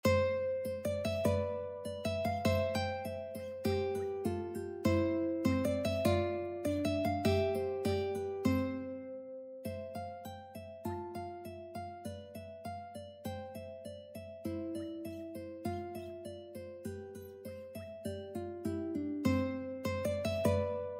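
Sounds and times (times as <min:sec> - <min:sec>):
ukulele duet playing a sonatina: 0:00.0 - 0:20.9.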